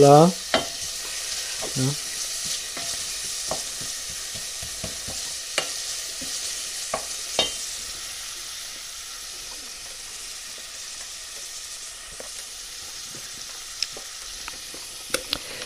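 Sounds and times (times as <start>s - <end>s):
speech: 0.0s - 0.4s, 1.8s - 2.0s
onions frying in a hot pan: 0.0s - 15.6s
wooden spoon scraping and tapping the bottom of a pan: 0.4s - 7.7s.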